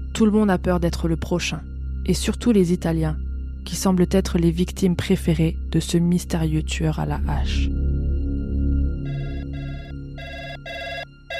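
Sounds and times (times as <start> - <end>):
speech: 0.2 - 7.8
telephone bell ringing: 9.1 - 11.3.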